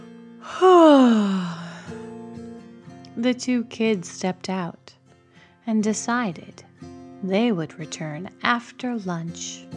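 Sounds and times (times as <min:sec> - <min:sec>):
person yawning: 0:00.4 - 0:01.9
speech: 0:03.2 - 0:04.9, 0:05.6 - 0:09.7.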